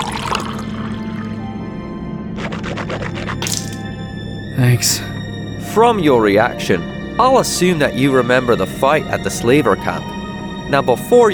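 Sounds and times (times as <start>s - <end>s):
person rinsing mouth with water: 0.0s - 1.4s, 2.4s - 3.9s
rhythmic gurgling of water in mouth: 0.0s - 1.5s, 2.2s - 4.0s
speech: 4.6s - 5.1s, 5.8s - 11.3s.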